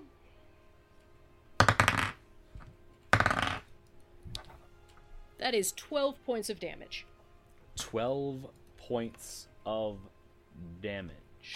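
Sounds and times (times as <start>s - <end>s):
dice rattling and clattering across a hard surface: 1.6s - 2.2s, 3.1s - 3.7s
speech: 5.4s - 7.1s, 7.9s - 11.5s.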